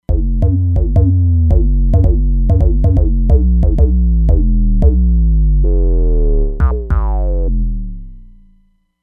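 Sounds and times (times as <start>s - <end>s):
drum and bass bassline: 0.0s - 8.5s.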